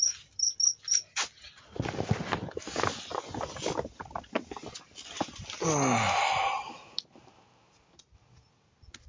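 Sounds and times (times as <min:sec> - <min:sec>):
cricket chirping: 0:00.0 - 0:01.1
rustling movement: 0:00.1 - 0:05.6.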